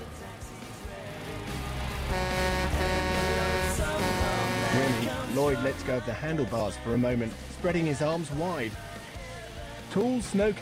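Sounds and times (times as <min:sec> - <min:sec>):
road traffic rumbling with engines roaring: 0:01.2 - 0:05.4
truck horn blaring: 0:02.1 - 0:05.4
speech: 0:04.7 - 0:08.9, 0:10.0 - 0:10.6.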